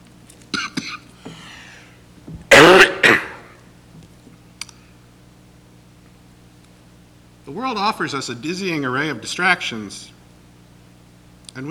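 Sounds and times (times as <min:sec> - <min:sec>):
pastor clearing throat: 0:00.6 - 0:01.1, 0:02.5 - 0:03.6
pastor coughing hard: 0:00.6 - 0:01.1, 0:02.5 - 0:03.6
speech: 0:07.5 - 0:10.2.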